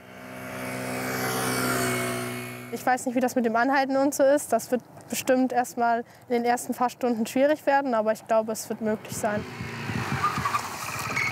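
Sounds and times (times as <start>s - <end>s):
car engine hum swerving through a slalom at 40 km/h without braking: 0.0s - 3.0s, 8.7s - 11.3s
road noise: 0.0s - 11.3s
speech: 2.7s - 9.7s.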